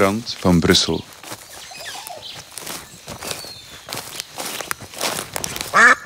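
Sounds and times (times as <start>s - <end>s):
speech: 0.0s - 1.2s
footsteps crunching through forest undergrowth in Brussels: 0.0s - 6.0s
duck quacking in the woods: 5.7s - 6.0s.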